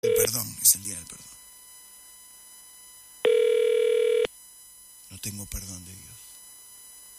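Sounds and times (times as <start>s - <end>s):
ringback tone of an outgoing telephone call: 0.0s - 0.4s, 3.2s - 4.3s
speech: 0.3s - 1.4s, 5.2s - 6.3s.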